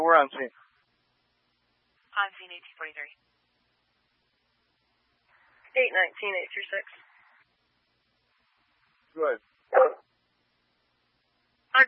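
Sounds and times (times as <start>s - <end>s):
speech: 0.2s - 0.7s, 2.2s - 3.3s, 5.8s - 7.0s, 9.2s - 10.0s
dog barking over a radio: 9.7s - 10.0s.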